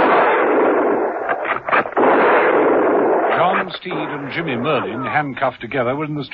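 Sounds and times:
gunfire from a firing squad volley: 0:00.0 - 0:04.9
speech: 0:03.7 - 0:06.3.

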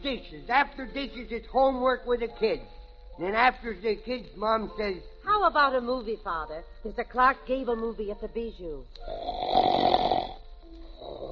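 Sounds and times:
speech: 0:00.0 - 0:09.8
person snoring: 0:09.1 - 0:11.2.

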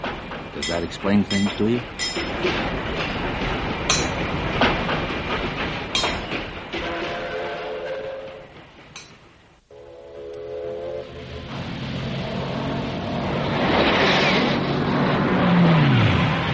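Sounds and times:
sharp metallic clanks of shunted freight cars: 0:00.0 - 0:07.2, 0:08.5 - 0:09.4
freight cars shunted by switch engines in a rail yard: 0:00.0 - 0:10.3, 0:10.9 - 0:16.5
speech: 0:00.6 - 0:03.6
sustained tonal horn-like wail: 0:06.8 - 0:08.5, 0:09.7 - 0:12.4.

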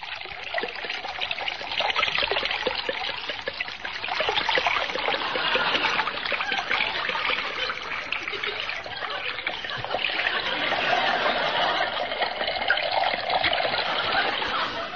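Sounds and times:
drink pouring and splashing: 0:00.0 - 0:14.9
laughter: 0:04.8 - 0:14.9.

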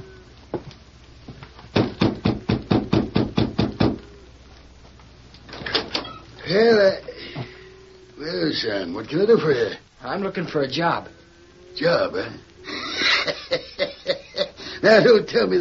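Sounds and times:
knocking on a wooden door: 0:01.7 - 0:04.0
speech: 0:08.6 - 0:11.2, 0:11.7 - 0:12.5, 0:14.8 - 0:15.5
laughter: 0:12.7 - 0:15.3.

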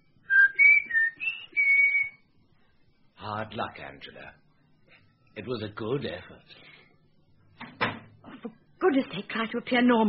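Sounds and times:
person whistling a short tune: 0:00.3 - 0:02.2
speech: 0:03.3 - 0:04.4, 0:05.4 - 0:06.7, 0:08.4 - 0:10.0.

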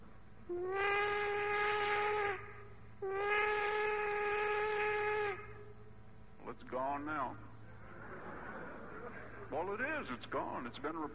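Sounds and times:
low rumbling hiss: 0:00.0 - 0:11.1
speech: 0:00.5 - 0:00.9, 0:06.8 - 0:07.5, 0:09.5 - 0:11.1
steam locomotive whistle blasts: 0:00.5 - 0:05.7
laughter: 0:07.7 - 0:09.8.

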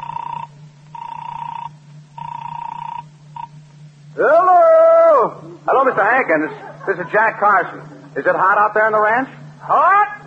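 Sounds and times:
telephone ringing in buzzy bursts: 0:00.0 - 0:03.6
steady low hum: 0:00.0 - 0:10.2
laughter: 0:05.4 - 0:08.3
speech: 0:05.7 - 0:10.2.

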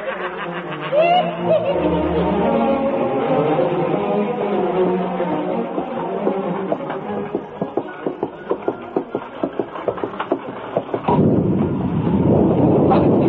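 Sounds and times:
laughter: 0:00.0 - 0:03.1
rhythmic clatter: 0:00.0 - 0:13.2
thunder crash from a violent storm: 0:11.1 - 0:13.2.

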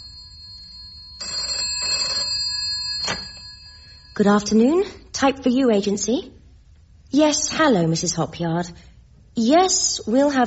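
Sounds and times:
telephone bell ringing: 0:00.0 - 0:05.0
speech: 0:04.2 - 0:06.4, 0:07.1 - 0:10.4.

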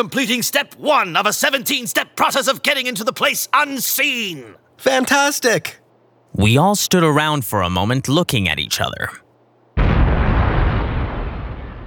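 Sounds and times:
speech: 0:00.0 - 0:05.8, 0:06.4 - 0:09.2
explosion sound effect: 0:09.8 - 0:11.8.

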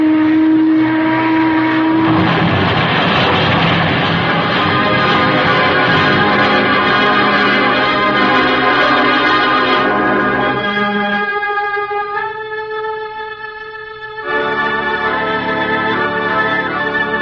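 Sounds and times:
low steady boat horn tone: 0:00.0 - 0:02.5, 0:04.2 - 0:13.2, 0:14.2 - 0:17.2
approaching boat engine rumble with churning water: 0:00.0 - 0:10.4.

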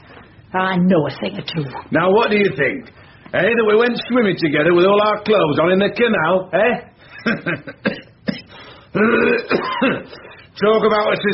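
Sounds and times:
speech: 0:00.5 - 0:08.0, 0:08.9 - 0:11.3
person coughing in hacking bursts: 0:07.6 - 0:10.4.

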